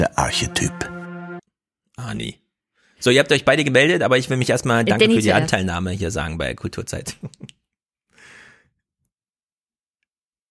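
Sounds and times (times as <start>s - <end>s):
speech: 0.0s - 0.9s, 2.0s - 2.4s, 3.0s - 7.5s
laughter: 4.9s - 5.6s
breathy exhale into microphone: 8.2s - 8.7s.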